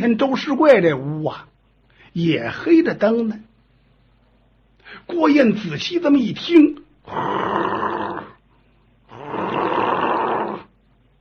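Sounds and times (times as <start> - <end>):
speech: 0.0 - 1.5, 2.1 - 3.5, 4.9 - 7.6
voice imitating a man snoring: 7.0 - 8.4, 9.1 - 10.7.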